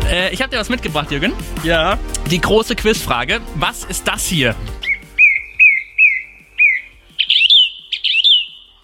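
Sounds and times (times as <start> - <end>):
speech: 0.2 - 4.9
song thrush singing: 4.2 - 8.8.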